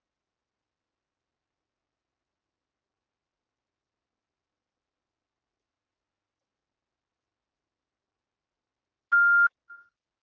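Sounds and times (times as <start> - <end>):
touch-tone beeps from a phone keypad: 9.1 - 9.8.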